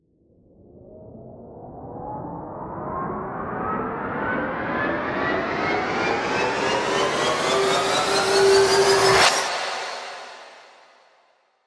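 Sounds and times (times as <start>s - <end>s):
riser tension build: 3.4s - 10.8s.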